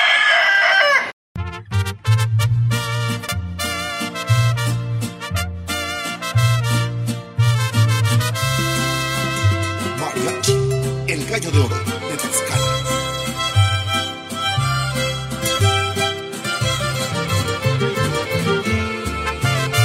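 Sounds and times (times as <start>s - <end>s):
rooster crowing: 0.0s - 1.2s
band playing brassy music with steady bass: 1.4s - 19.8s.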